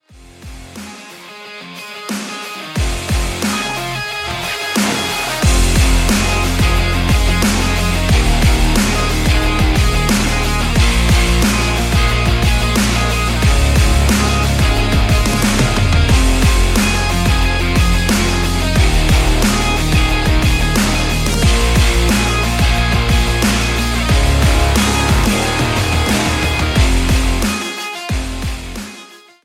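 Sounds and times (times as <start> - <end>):
powerful rock instrumental ringtone: 0.3 - 29.2.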